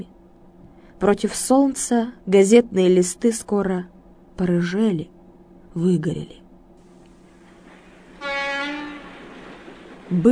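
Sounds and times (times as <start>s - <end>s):
speech: 1.0s - 5.2s, 5.8s - 6.4s, 10.1s - 10.3s
low rumble of train wheels rolling on a railway: 7.2s - 10.3s
train horn blast: 8.0s - 9.7s.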